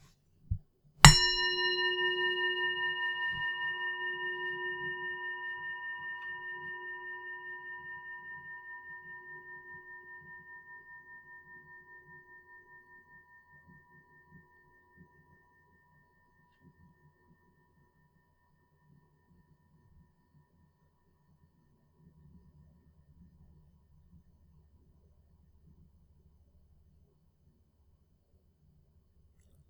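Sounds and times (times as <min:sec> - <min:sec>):
single bell struck and ringing: 0:01.1 - 0:09.0.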